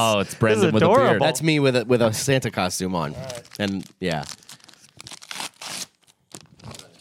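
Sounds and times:
speech: 0.0s - 4.4s
taped Christmas wrapping paper being torn off a gift: 3.2s - 6.9s.

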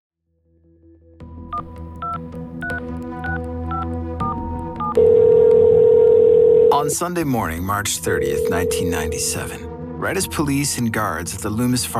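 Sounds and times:
telephone keypad dialing out: 4.8s - 7.0s, 8.1s - 9.4s
speech: 6.8s - 11.9s.

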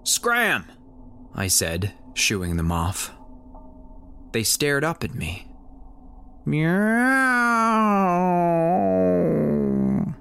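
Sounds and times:
speech: 0.0s - 0.8s, 1.4s - 3.2s, 4.3s - 5.5s, 6.4s - 8.9s
human voice imitating a cat meow: 6.5s - 10.1s.

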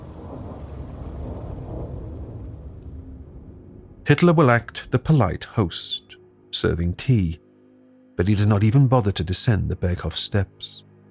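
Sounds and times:
deep rolling thunder: 0.0s - 4.1s
steady rain: 0.0s - 5.9s
speech: 4.1s - 7.4s, 8.2s - 10.9s.

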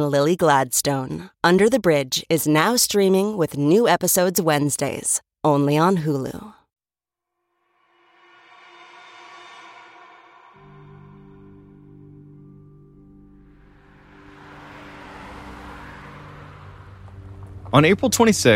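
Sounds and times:
speech: 0.0s - 6.6s, 17.7s - 18.5s
car driving up and parking: 10.2s - 18.5s
car engine rumbling: 13.4s - 18.5s.

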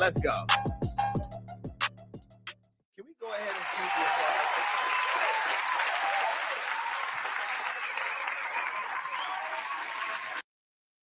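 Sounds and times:
speech: 0.0s - 1.3s
crowd applauding: 3.3s - 10.4s.

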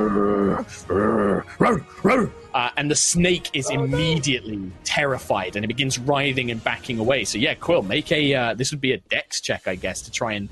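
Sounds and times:
person imitating the low growl of a big black and red Doberman: 0.0s - 2.3s
speech: 0.5s - 10.5s.

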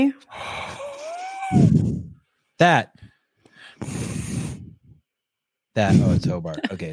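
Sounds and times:
speech: 0.0s - 0.6s, 2.6s - 2.9s, 5.8s - 6.9s
heavy breathing into a microphone: 0.3s - 2.2s, 2.9s - 5.0s.

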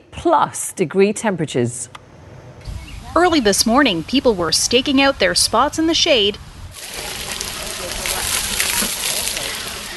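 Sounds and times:
speech: 0.2s - 2.0s, 3.1s - 6.5s
water splashing and sloshing at city pools and splash pads in Toronto Canada: 3.9s - 9.9s.

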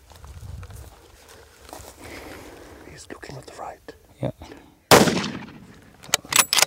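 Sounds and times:
gunshot fired at a wounded animal lying in grass during a hunt: 4.9s - 5.8s.

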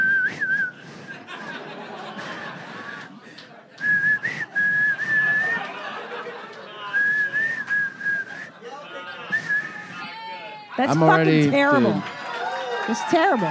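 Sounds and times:
person whistling a tuneless melody: 0.0s - 1.2s, 3.8s - 5.7s, 6.9s - 8.5s, 9.3s - 10.0s
chatter: 0.0s - 13.4s
people chuckling: 0.4s - 13.4s
speech: 10.8s - 12.1s, 12.9s - 13.4s.

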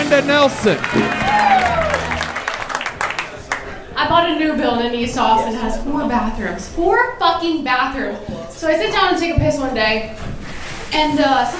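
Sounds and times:
audience applauding and cheering: 0.0s - 3.9s
speech: 0.2s - 1.8s, 4.0s - 10.3s, 10.9s - 11.5s.

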